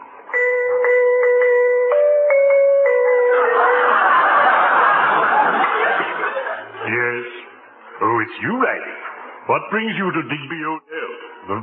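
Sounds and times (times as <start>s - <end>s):
doorbell chiming a short tune: 0.3s - 4.6s
audience laughter: 3.3s - 7.2s
speech: 8.3s - 8.9s, 9.5s - 11.6s.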